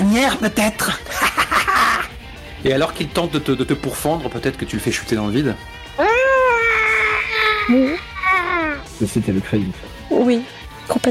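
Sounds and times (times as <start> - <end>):
speech: 0.2 - 1.4, 2.6 - 6.1, 7.7 - 8.1, 9.0 - 11.0
laughter: 1.1 - 2.1
person vocally mimicking a creature's high squeal: 6.0 - 8.8.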